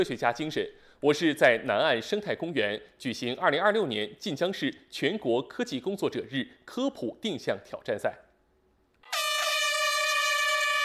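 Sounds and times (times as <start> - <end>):
speech: 0.0 - 8.2
air horn blast signalling the start of a race in a park: 9.0 - 10.8.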